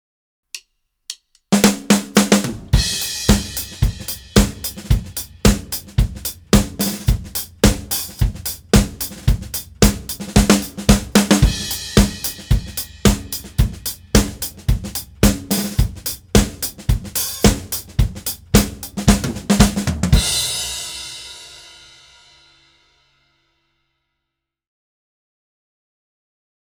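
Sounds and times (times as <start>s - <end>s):
four on the floor drum beat: 1.5s - 22.6s.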